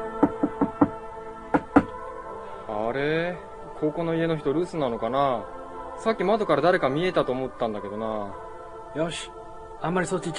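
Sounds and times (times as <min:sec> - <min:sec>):
knuckles knocking on a house door while trick-or-treating: 0:00.2 - 0:01.9
speech: 0:02.9 - 0:10.3.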